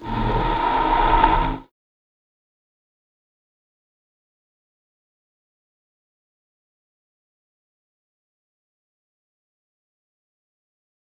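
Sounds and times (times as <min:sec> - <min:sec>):
noise: 0:00.0 - 0:01.6.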